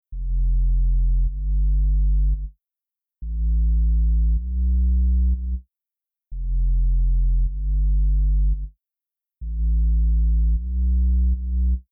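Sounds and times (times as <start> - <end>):
future bass sub bass: 0.1 - 2.5, 3.2 - 5.6, 6.4 - 8.7, 9.4 - 11.8.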